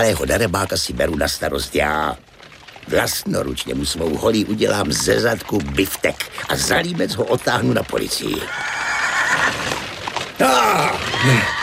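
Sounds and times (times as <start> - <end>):
speech: 0.0 - 2.3, 2.9 - 8.8, 10.4 - 11.6
rough noisy commotion: 0.0 - 11.6
horse whinnying: 8.4 - 11.6.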